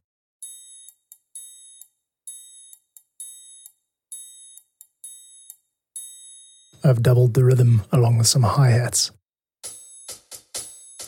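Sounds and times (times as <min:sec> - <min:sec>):
triangle ringing in a piece of music: 0:00.4 - 0:06.9, 0:09.7 - 0:11.0
speech: 0:06.8 - 0:09.2.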